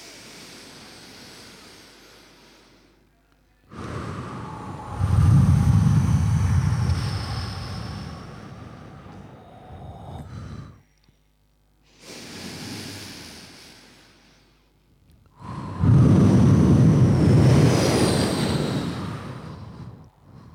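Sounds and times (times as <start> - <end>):
deep breath in during a guided breathing exercise: 0.0 - 3.1, 3.7 - 11.0, 11.9 - 14.7, 15.3 - 20.5.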